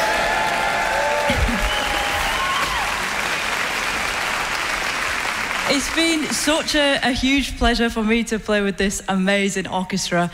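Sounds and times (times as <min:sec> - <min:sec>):
large audience at an orchestral concert applauding: 0:00.0 - 0:06.7
speech: 0:05.8 - 0:10.3.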